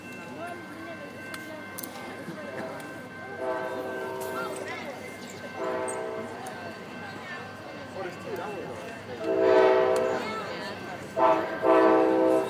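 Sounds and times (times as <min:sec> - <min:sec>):
steady low rail rumble: 0:00.0 - 0:12.4
approaching train horn blasts: 0:03.4 - 0:04.6, 0:05.6 - 0:06.4, 0:09.2 - 0:10.3, 0:11.1 - 0:12.4.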